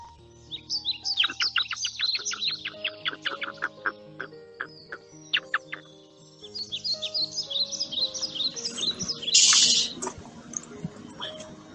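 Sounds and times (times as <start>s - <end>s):
soft steady musical backing: 0.0s - 11.7s
hyrax calls: 1.1s - 5.9s, 8.5s - 10.0s.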